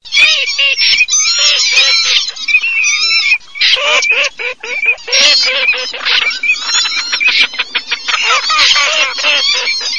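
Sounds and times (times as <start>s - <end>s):
common snipe calling: 0.1s - 9.9s
laughter: 0.2s - 9.9s.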